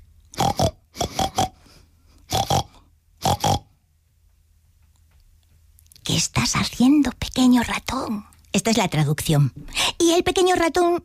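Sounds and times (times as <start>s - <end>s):
voice imitating a pig with nasal oinks and grunts: 0.3s - 1.6s, 2.3s - 3.8s
speech: 6.2s - 11.0s.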